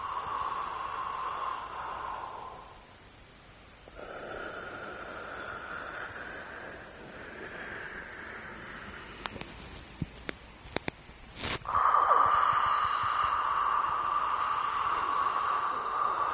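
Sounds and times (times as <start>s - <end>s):
hissing breaths drawn through a partially constricted throat: 0.0s - 10.0s, 11.4s - 16.3s
faint clicks: 9.1s - 11.6s.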